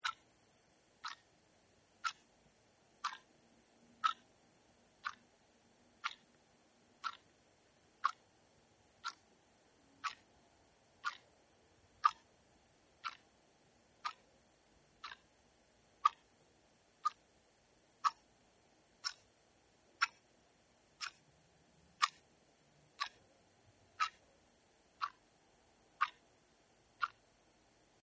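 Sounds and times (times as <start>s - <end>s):
small tabletop clock ticking: 0.0s - 0.3s, 1.0s - 1.4s, 2.0s - 4.3s, 5.0s - 5.3s, 6.0s - 6.4s, 7.0s - 8.3s, 9.0s - 10.4s, 11.0s - 11.4s, 12.0s - 13.4s, 14.0s - 14.4s, 15.0s - 15.3s, 16.0s - 16.3s, 16.9s - 17.4s, 18.0s - 18.4s, 19.0s - 20.3s, 21.0s - 21.3s, 21.9s - 22.3s, 22.9s - 23.3s, 23.9s - 24.3s, 24.9s - 27.5s.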